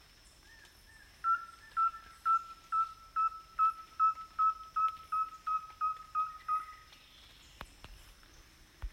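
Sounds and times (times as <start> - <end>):
rusty-belted tapaculo calling: 0.5 - 7.0.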